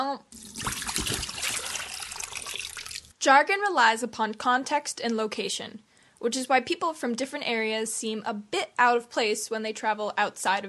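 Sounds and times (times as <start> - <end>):
speech: 0.0 - 0.8, 3.2 - 10.6
water running from a drinking fountain: 0.3 - 3.1.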